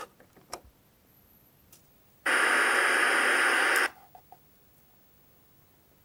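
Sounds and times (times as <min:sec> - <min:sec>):
CRT screen turning on: 0:01.8 - 0:05.7.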